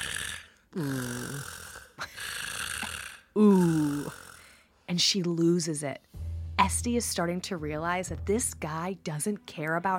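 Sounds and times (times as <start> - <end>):
man snoring in bed: 0.0 - 4.6
speech: 0.7 - 1.6, 3.4 - 3.6, 5.0 - 6.1, 6.7 - 9.9.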